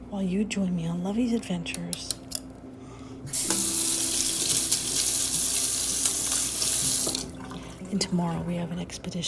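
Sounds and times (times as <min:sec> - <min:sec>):
speech: 0:00.1 - 0:02.3, 0:07.9 - 0:09.2
water running from a tap filling a vessel: 0:03.3 - 0:08.1.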